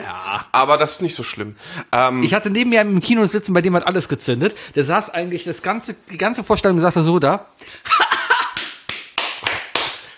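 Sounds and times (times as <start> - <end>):
speech: 0.1 - 8.1
hand slapping on thigh: 8.4 - 10.1.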